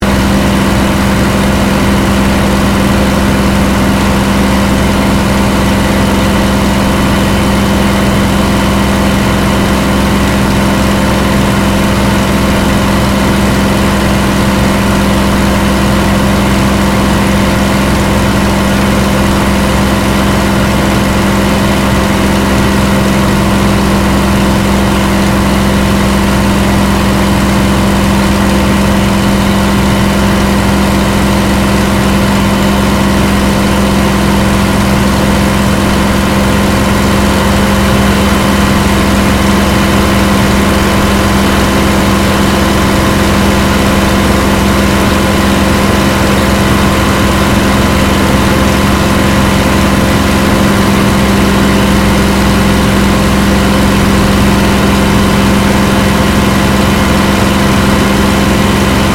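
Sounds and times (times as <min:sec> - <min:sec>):
Supermarine Spitfire Mk VIII aircraft flying heard from interior: 0:00.0 - 0:59.1.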